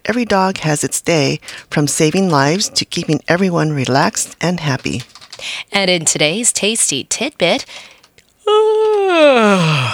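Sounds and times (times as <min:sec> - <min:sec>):
speech: 0:00.1 - 0:07.9, 0:08.5 - 0:09.9
person yawning: 0:08.4 - 0:09.9.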